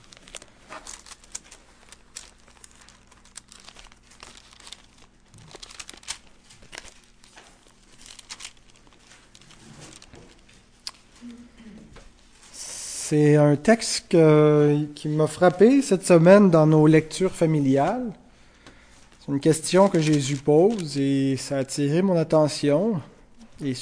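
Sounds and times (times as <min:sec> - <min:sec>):
pages of a Bible rustling as the book is opened and turned: 0:00.0 - 0:11.1, 0:19.1 - 0:21.0
speech: 0:13.1 - 0:18.2, 0:19.3 - 0:23.8.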